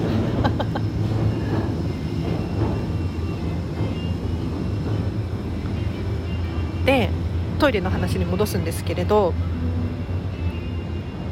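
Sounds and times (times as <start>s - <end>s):
laughter: 0.0s - 1.2s
train wheels clacking over rail joints: 0.0s - 8.6s
train rumbling by overhead on elevated tracks: 0.0s - 11.3s
speech: 7.6s - 9.8s.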